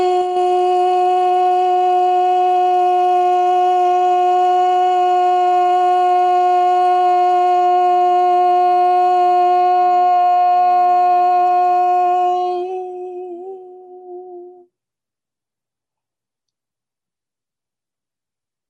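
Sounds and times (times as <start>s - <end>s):
single voice chanting a long steady Ah vowel: 0.0s - 14.7s.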